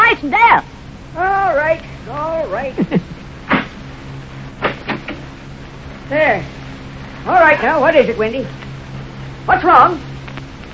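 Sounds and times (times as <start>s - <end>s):
low steady hum: 0.0s - 10.7s
speech: 0.2s - 3.1s, 6.1s - 6.6s, 7.2s - 8.6s, 9.5s - 10.1s
door being opened: 4.6s - 5.3s.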